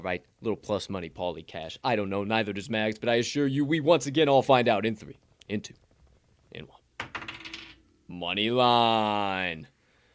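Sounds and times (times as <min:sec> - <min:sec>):
speech: 0:00.0 - 0:05.8, 0:06.5 - 0:06.8, 0:08.1 - 0:09.7
die rolling and settling: 0:05.2 - 0:08.0.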